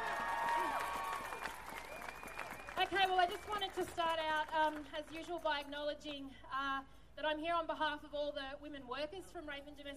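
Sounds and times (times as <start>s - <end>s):
crowd applause at a gathering of domestic violence service workers: 0.0s - 3.9s
speech: 2.8s - 9.9s.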